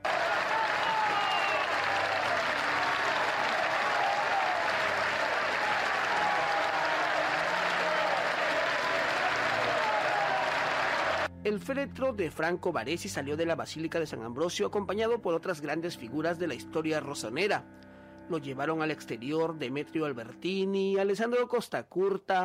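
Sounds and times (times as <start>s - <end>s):
large crowd applauding thunderously: 0.0s - 11.3s
speech: 11.5s - 22.4s.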